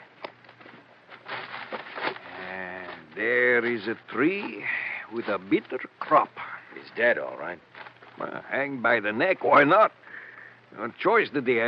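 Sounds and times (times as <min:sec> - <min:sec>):
horses clattering and shuffling: 0:00.0 - 0:05.8
speech: 0:03.2 - 0:10.0, 0:10.7 - 0:11.6.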